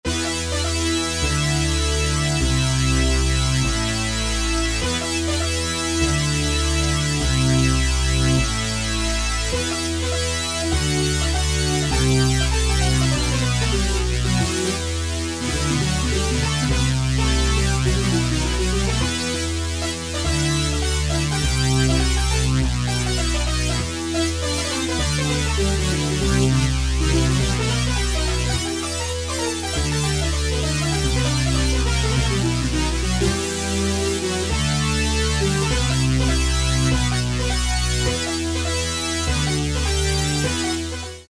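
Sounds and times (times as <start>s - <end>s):
Moog and E-mu Proteus VX synthesizer: 0.0s - 41.2s.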